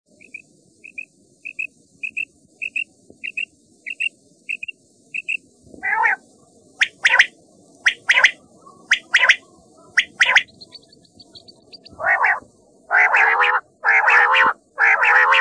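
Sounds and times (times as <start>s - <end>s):
common quail calling: 5.2s - 6.2s, 6.8s - 15.4s.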